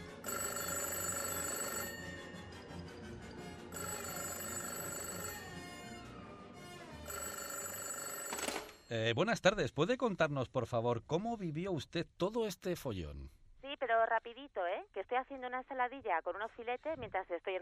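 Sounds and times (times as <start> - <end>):
telephone ringing with a bright electronic trill: 0.2 - 2.5, 3.7 - 6.0, 7.0 - 9.0
speech: 8.9 - 17.6.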